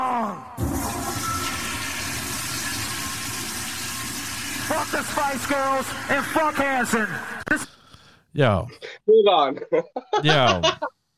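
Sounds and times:
toilet flushing: 0:00.6 - 0:06.7
speech: 0:04.7 - 0:07.7, 0:08.4 - 0:11.0
laughter: 0:09.4 - 0:10.9.

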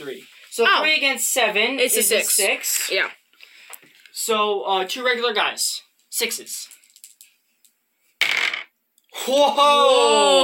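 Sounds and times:
speech: 0:00.0 - 0:03.2, 0:04.2 - 0:06.8, 0:09.2 - 0:10.4
dice rattling on a table during a tabletop game: 0:06.5 - 0:07.4, 0:08.2 - 0:08.7.

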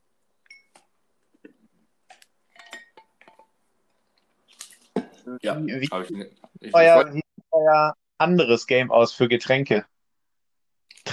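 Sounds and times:
glass clinking: 0:00.4 - 0:00.9, 0:02.5 - 0:03.6
speech: 0:05.3 - 0:09.9.

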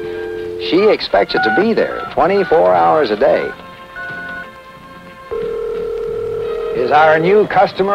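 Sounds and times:
telephone dial tone on a newly installed phone line: 0:00.0 - 0:01.0, 0:04.0 - 0:04.5, 0:05.3 - 0:06.9
speech: 0:00.6 - 0:03.6, 0:06.9 - 0:07.9.

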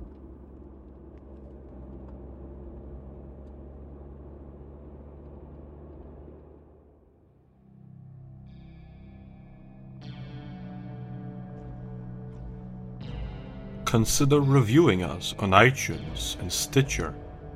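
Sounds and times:
car engine rumbling as it drives off: 0:00.0 - 0:17.5
speech: 0:13.9 - 0:17.2.

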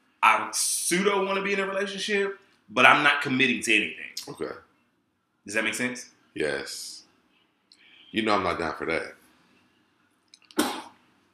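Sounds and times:
speech: 0:00.4 - 0:04.7, 0:05.5 - 0:07.0, 0:08.1 - 0:09.2
sneeze: 0:10.5 - 0:11.0.

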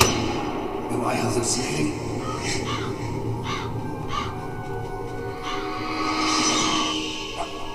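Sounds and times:
speech: 0:01.0 - 0:02.8
harsh raven caws: 0:01.4 - 0:07.7.

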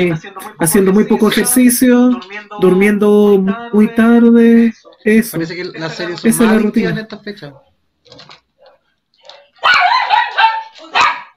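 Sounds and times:
speech: 0:00.0 - 0:08.4, 0:09.6 - 0:09.9
dog barking and yipping: 0:09.6 - 0:11.3.

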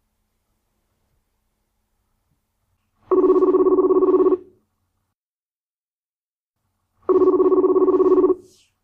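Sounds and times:
long buzzing telephone rings of a call placed on the line: 0:03.0 - 0:04.6, 0:07.0 - 0:08.6.

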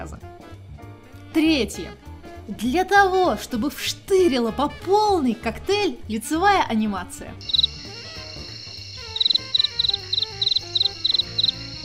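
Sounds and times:
soft murmuring music: 0:00.0 - 0:11.8
speech: 0:01.3 - 0:07.6
crickets chirping: 0:07.4 - 0:11.8.

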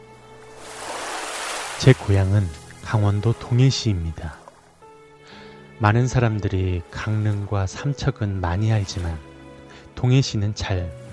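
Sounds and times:
ocean surf at the seaside in Gangwon Province South Korea: 0:00.0 - 0:05.5, 0:06.8 - 0:10.0
speech: 0:01.8 - 0:04.4, 0:05.8 - 0:09.3, 0:10.0 - 0:11.0.

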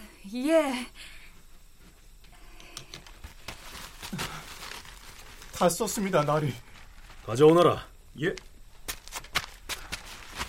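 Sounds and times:
speech: 0:00.3 - 0:01.2, 0:05.6 - 0:08.5
faint papery rustles: 0:03.2 - 0:07.4, 0:08.9 - 0:10.4.

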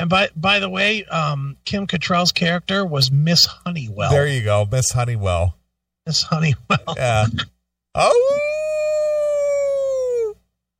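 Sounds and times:
speech: 0:00.0 - 0:08.6
voice imitating a howl: 0:08.0 - 0:10.4.

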